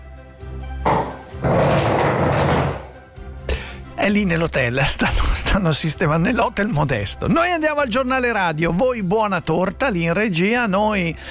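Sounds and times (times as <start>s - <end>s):
chair scraping across a hard floor: 0.8s - 3.1s
speech: 4.0s - 11.2s.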